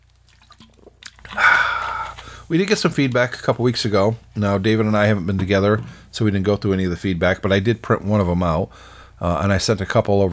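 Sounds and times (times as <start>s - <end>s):
person slurping a sip of water: 0.0s - 6.2s
mouth clicks: 0.6s - 2.5s
speech: 2.5s - 10.3s.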